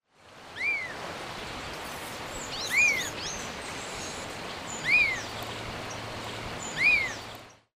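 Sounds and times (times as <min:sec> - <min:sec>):
Elaenia spectabilis calling: 0:00.5 - 0:01.0, 0:02.4 - 0:06.0, 0:06.6 - 0:07.6.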